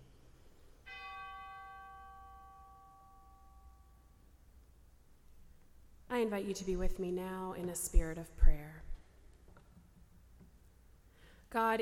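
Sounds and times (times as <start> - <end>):
memorial bell chime: 0.8 - 4.2
speech: 6.3 - 8.9, 11.5 - 11.8.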